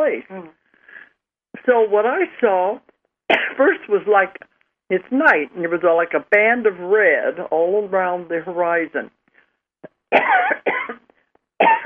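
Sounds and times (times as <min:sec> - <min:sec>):
speech: 0:00.1 - 0:00.6, 0:01.6 - 0:09.2, 0:10.1 - 0:11.0, 0:11.6 - 0:11.8
harsh throaty coughs clearing a tickle in the throat: 0:03.3 - 0:03.6, 0:09.8 - 0:11.8.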